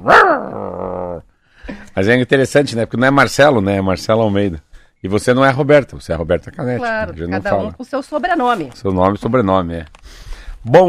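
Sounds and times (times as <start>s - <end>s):
large dog barking: 0.0s - 1.2s
speech: 2.0s - 10.8s.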